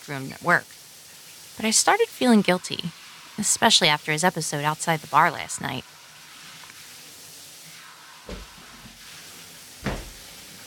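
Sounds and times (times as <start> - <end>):
speech: 0.1 - 0.8, 1.6 - 6.0
front door opening: 9.8 - 10.3.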